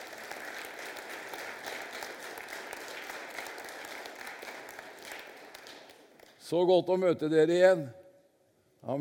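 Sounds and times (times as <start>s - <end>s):
audience applause: 0.0s - 6.3s
speech: 6.5s - 8.0s.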